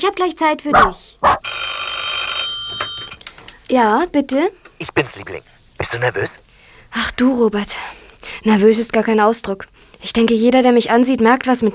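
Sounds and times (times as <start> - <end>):
speech: 0.0 - 1.8, 3.7 - 11.7
telephone bell ringing: 1.5 - 3.2.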